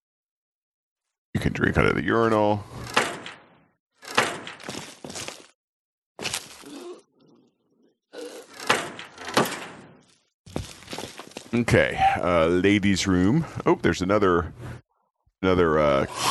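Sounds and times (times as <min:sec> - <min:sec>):
speech: 0:01.4 - 0:02.8, 0:11.6 - 0:14.7, 0:15.4 - 0:16.2
heavy metal cell door clanking and banging shut: 0:02.8 - 0:04.6, 0:08.4 - 0:10.0.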